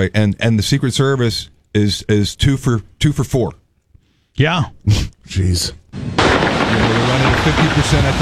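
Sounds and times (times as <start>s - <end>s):
speech: 0.0s - 3.6s, 4.4s - 8.2s
gunfire near the White House at 17th Street and Pennsylvania Avenue Northwest: 6.0s - 8.2s.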